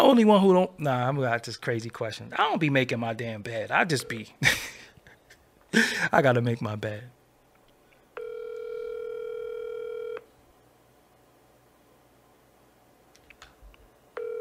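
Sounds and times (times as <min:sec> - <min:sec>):
speech: 0:00.0 - 0:04.7, 0:05.7 - 0:07.2
electronic phone line ring tone on the caller's end: 0:04.0 - 0:04.3, 0:08.2 - 0:10.3, 0:14.2 - 0:14.3.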